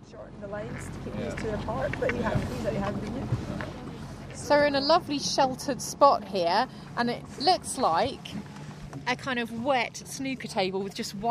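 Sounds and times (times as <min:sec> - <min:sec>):
small boat engine rumble on loch water: 0:00.0 - 0:11.2
speech: 0:00.1 - 0:11.2.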